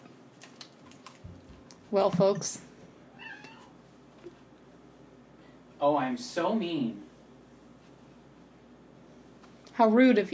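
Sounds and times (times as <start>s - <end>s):
speech: 1.9s - 2.7s, 5.8s - 7.1s, 9.8s - 10.3s
cat meowing: 3.1s - 3.8s.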